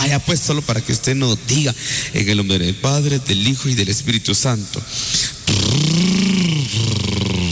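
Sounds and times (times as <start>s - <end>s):
speech: 0.0s - 7.3s
voice imitating a motorcycle engine starting: 5.5s - 7.5s.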